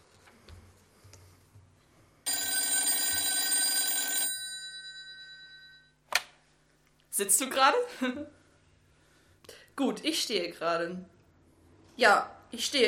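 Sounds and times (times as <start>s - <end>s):
telephone bell ringing with metallic trilling: 2.3s - 6.0s
speech: 7.2s - 8.4s, 9.8s - 11.2s, 12.0s - 12.8s.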